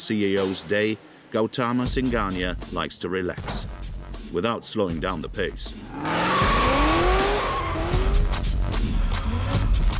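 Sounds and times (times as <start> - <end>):
speech: 0.1 - 6.5
race car engine roar on a private race circuit in India: 5.6 - 9.8
race car tires squealing while drifting on a private race circuit in India: 5.8 - 8.4.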